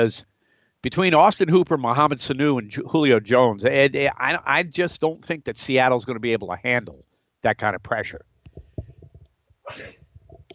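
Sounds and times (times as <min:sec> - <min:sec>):
speech: 0:00.0 - 0:08.3, 0:09.7 - 0:10.0
person sneezing: 0:09.7 - 0:10.0.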